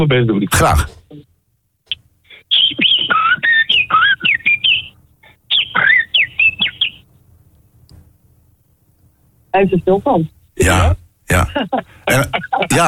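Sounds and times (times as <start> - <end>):
speech: 0.0 - 1.0, 9.5 - 12.8
laughter: 2.5 - 4.8, 11.3 - 12.8
person whistling a blackbird's song: 2.5 - 7.0.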